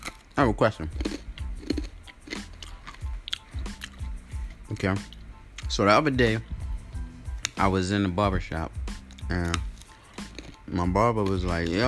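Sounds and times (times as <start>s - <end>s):
crunchy chewing of a crispy pancake: 0.0s - 5.7s, 9.0s - 11.8s
speech: 0.4s - 1.1s, 4.8s - 6.5s, 7.6s - 9.7s, 10.7s - 11.8s.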